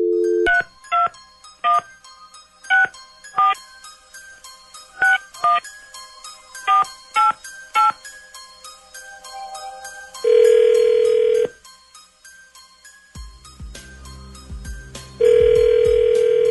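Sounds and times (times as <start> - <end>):
telephone dial tone: 0.0 - 0.7, 10.2 - 11.6, 15.2 - 16.5
touch-tone keypad beeps as a telephone number is dialed: 0.0 - 1.9, 2.7 - 3.6, 5.0 - 5.6, 6.7 - 8.0, 10.3 - 11.5, 15.2 - 16.5.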